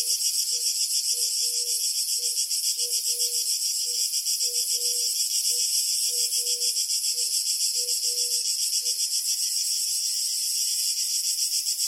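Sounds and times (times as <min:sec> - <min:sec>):
crickets chirping in a high pulsing trill: 0:00.0 - 0:11.8.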